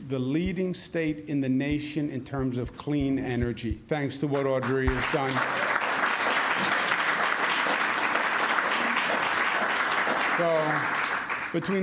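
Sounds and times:
speech: 0.1s - 5.7s, 10.4s - 11.8s
audience applause: 4.4s - 11.8s.

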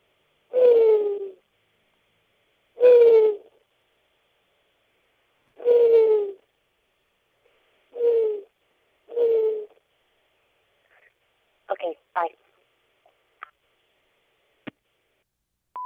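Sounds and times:
person imitating owl hoots: 0.5s - 1.4s, 2.8s - 3.6s, 5.6s - 6.4s, 7.9s - 8.5s, 9.1s - 9.8s
speech: 11.8s - 12.5s.

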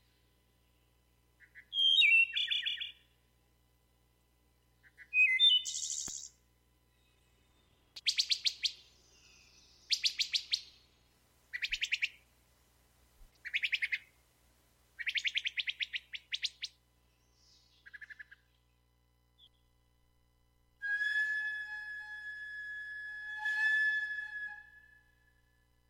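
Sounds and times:
played-back recording of wood thrush song: 1.4s - 3.1s, 4.8s - 12.3s, 13.2s - 14.2s, 15.0s - 18.8s
steady tonal hum: 19.5s - 25.8s.

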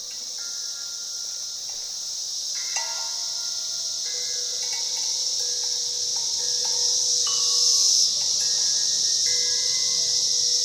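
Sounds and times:
Brood X 17-year periodical cicadas chorus: 0.0s - 10.6s.

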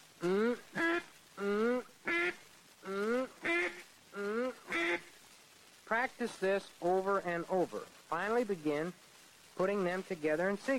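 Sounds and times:
duck call quacking imitating a duck: 0.3s - 5.1s
speech: 6.1s - 10.7s.

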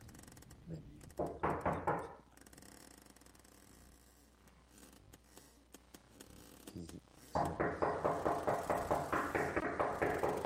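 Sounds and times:
speech: 0.7s - 1.4s
loud rapid knocking on a door: 1.2s - 2.2s, 7.4s - 10.4s.

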